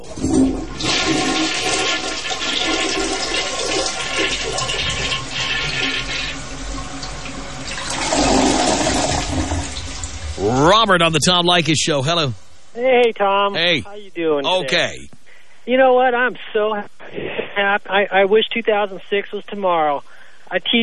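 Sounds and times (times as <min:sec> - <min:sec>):
toilet flushing with bowl gurgling and refilling: 0:00.0 - 0:12.3
speech: 0:10.9 - 0:20.8.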